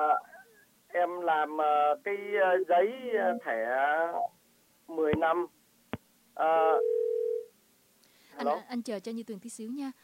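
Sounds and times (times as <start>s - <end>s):
speech: 1.0s - 5.6s, 6.4s - 6.9s, 8.4s - 10.0s
telephone dial tone after call disconnected: 6.8s - 7.4s.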